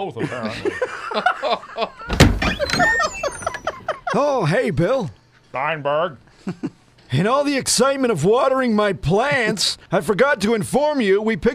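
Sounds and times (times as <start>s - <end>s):
speech: 0.0s - 1.9s, 4.2s - 11.5s
laughter: 0.2s - 2.2s, 2.8s - 4.5s
door thudding shut: 2.1s - 3.6s.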